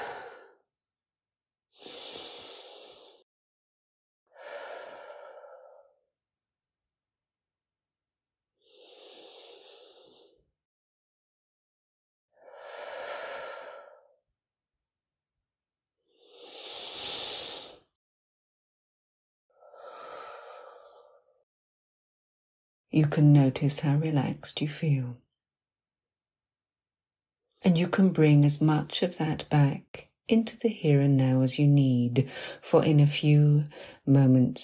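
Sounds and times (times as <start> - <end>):
slow deep human breathing: 1.8 - 3.2, 4.4 - 6.0, 8.6 - 10.4, 12.4 - 14.2, 16.2 - 17.8, 19.6 - 21.4
speech: 22.9 - 25.2, 27.6 - 34.6.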